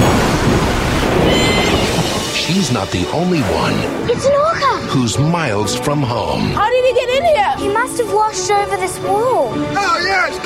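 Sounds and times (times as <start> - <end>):
deep rolling thunder: 0.0 - 2.7
dense wash of rain or surf-like noise: 0.0 - 4.5
speech: 2.7 - 10.4.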